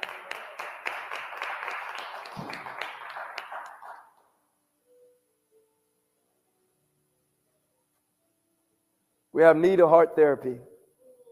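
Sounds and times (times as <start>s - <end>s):
crowd applause: 0.0s - 4.3s
speech: 9.4s - 10.7s.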